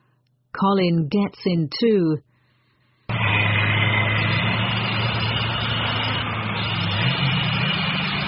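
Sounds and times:
speech: 0:00.6 - 0:02.3
car engine roaring as the car speeds along: 0:03.1 - 0:08.2.

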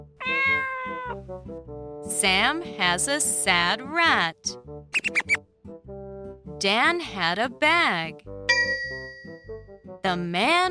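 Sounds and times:
cat meowing: 0:00.1 - 0:01.2
speech: 0:01.1 - 0:05.4, 0:06.6 - 0:08.3, 0:10.0 - 0:10.6.

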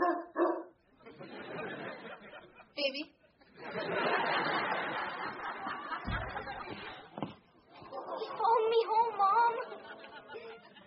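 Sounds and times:
dog barking inside a house: 0:00.0 - 0:00.8
laughter: 0:01.0 - 0:10.8
speech: 0:02.8 - 0:05.2.

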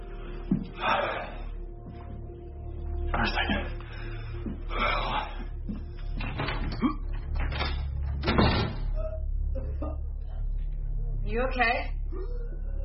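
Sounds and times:
steady low hum: 0:00.0 - 0:12.8
speech: 0:00.5 - 0:01.2, 0:11.4 - 0:11.9
front door creaking: 0:06.0 - 0:09.2
front door shutting with a solid thud: 0:07.4 - 0:09.0.

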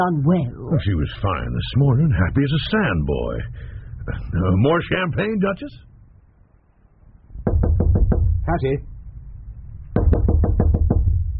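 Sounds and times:
speech: 0:00.0 - 0:05.9, 0:08.5 - 0:08.9
rapid knocking on a closed door: 0:07.4 - 0:08.5, 0:09.9 - 0:11.3.

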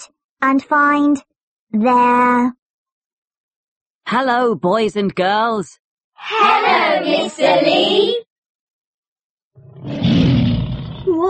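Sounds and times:
speech: 0:00.0 - 0:02.6, 0:04.1 - 0:08.2
tiger roaring: 0:09.6 - 0:11.1.

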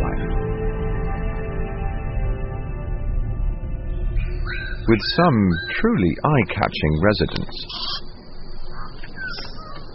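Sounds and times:
steady dense forest hiss: 0:00.5 - 0:09.9
bird of paradise whistle-like call: 0:04.2 - 0:05.8
speech: 0:04.9 - 0:08.0.

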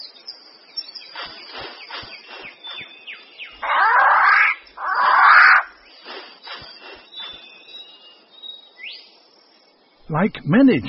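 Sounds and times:
soft bird chirps: 0:00.0 - 0:10.8
insect buzzing: 0:00.8 - 0:08.2
rifle bird of paradise giving harsh rasping calls: 0:03.6 - 0:07.4
speech: 0:10.1 - 0:10.8.

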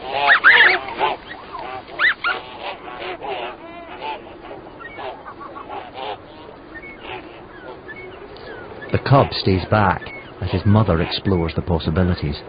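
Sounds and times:
flock of barnacle geese calling: 0:00.0 - 0:12.4
speech: 0:09.0 - 0:12.4.

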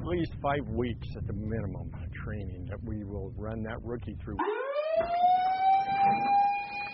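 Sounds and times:
low rumble: 0:00.0 - 0:04.4
speech: 0:00.1 - 0:05.4, 0:06.0 - 0:06.5
alarm siren wailing at a smoke jumper base: 0:04.4 - 0:06.9.

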